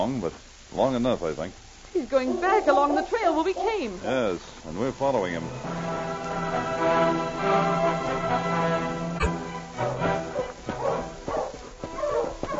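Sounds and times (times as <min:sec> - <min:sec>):
speech: 0:00.0 - 0:10.2
dog whining and whimpering: 0:02.2 - 0:03.9, 0:10.8 - 0:12.5
dog barking and yipping: 0:10.3 - 0:12.5.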